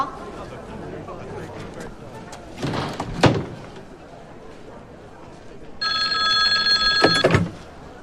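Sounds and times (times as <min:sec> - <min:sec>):
faint murmur: 0:00.0 - 0:08.0
telephone bell ringing as a call to Beijing is connected: 0:05.8 - 0:07.4.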